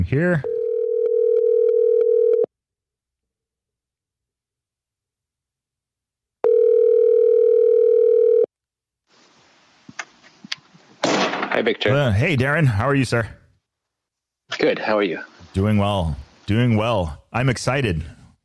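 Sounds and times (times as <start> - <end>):
speech: 0.0 - 0.5, 11.6 - 13.4, 14.6 - 18.2
stuttering pulsed telephone line tone as a call is dialed: 0.5 - 2.5, 6.4 - 8.5.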